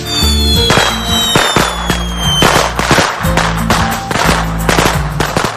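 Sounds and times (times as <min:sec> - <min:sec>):
whistling tones: 0:00.1 - 0:02.6
string of firecrackers exploding: 0:00.1 - 0:05.5.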